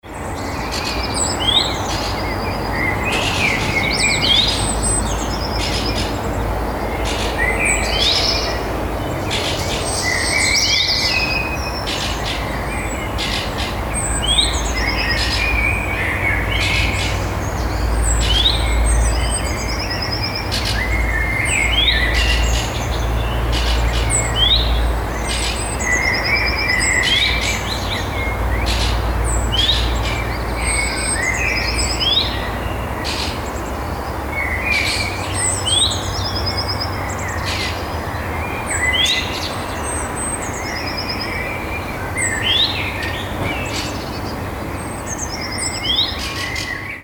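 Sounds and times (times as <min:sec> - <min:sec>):
birds: 0:00.0 - 0:47.0
faint cars: 0:00.0 - 0:47.0.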